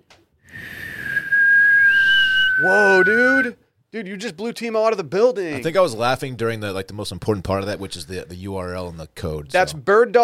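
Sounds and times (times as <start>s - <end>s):
Bird Dogs whistle-tip football thrown hard whistling through the air: 0.5s - 3.5s
speech: 2.6s - 10.2s.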